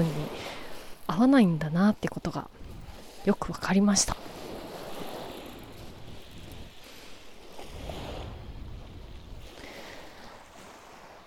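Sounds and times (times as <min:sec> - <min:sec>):
calm sea waves washing onto the shore: 0:00.0 - 0:11.2
light wind noise buffeting the microphone: 0:00.0 - 0:11.2
speech: 0:01.1 - 0:04.4.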